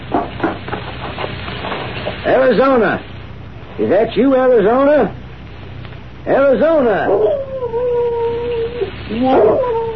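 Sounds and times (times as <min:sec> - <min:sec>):
speech: 0:02.3 - 0:03.1, 0:03.8 - 0:05.2, 0:06.2 - 0:07.4, 0:09.1 - 0:09.7
dog howling: 0:07.0 - 0:09.9.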